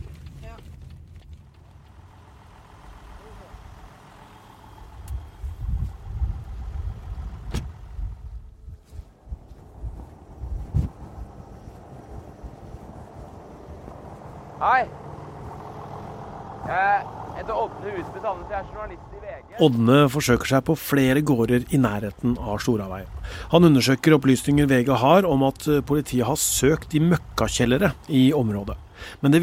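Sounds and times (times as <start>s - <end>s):
high car engine drone on a rural road between farms: 0.0s - 29.4s
car bumps and jolts over an uneven rural road: 7.3s - 8.0s
speech: 14.6s - 15.0s, 16.7s - 29.4s.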